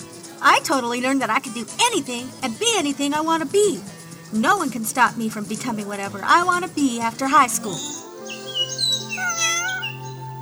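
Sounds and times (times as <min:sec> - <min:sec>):
speech: 0:00.4 - 0:08.1
cat meowing: 0:08.3 - 0:10.2.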